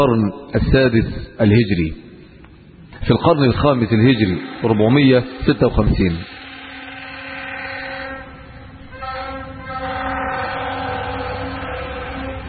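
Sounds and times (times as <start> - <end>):
speech: 0.0 - 2.0, 3.0 - 6.4
train rumbling past with low roar and tonal whining: 4.1 - 12.4.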